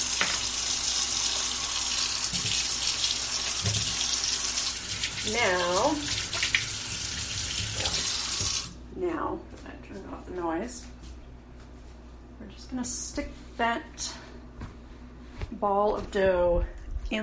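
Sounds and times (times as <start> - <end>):
tap water running over hands being washed: 0.0 - 8.8
speech: 5.3 - 6.2, 10.4 - 10.9, 12.7 - 14.2, 15.6 - 17.2.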